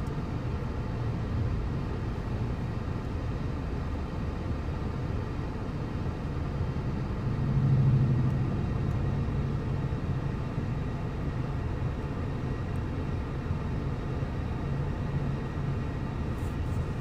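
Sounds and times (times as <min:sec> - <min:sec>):
car road and engine drone heard from inside, driving through traffic: 0:00.0 - 0:17.0.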